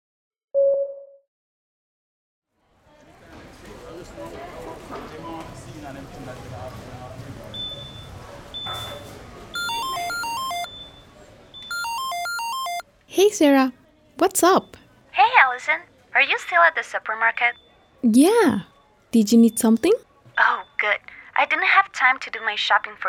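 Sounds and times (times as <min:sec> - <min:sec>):
steady bustle: 0:03.4 - 0:13.5
phone electronic ringtone with rapid warbling melody: 0:09.6 - 0:10.7, 0:11.7 - 0:12.8
short single beep: 0:09.6 - 0:10.7, 0:11.7 - 0:12.8
speech: 0:13.2 - 0:23.0.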